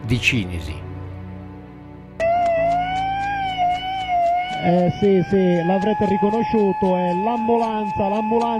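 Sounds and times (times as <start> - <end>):
speech: 0.1 - 0.8, 4.6 - 8.5
ambulance siren wailing: 2.2 - 8.5.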